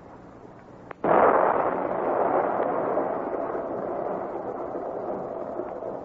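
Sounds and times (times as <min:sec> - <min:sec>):
dense heavy rumble of a dynamite blast: 0:01.0 - 0:06.0
dynamite blast after a blasting warning: 0:01.0 - 0:06.0.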